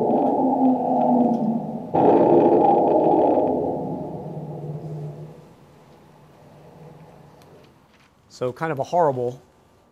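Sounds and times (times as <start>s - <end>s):
elephants screaming in distress after being shot: 0.0s - 5.4s
speech: 8.4s - 9.5s.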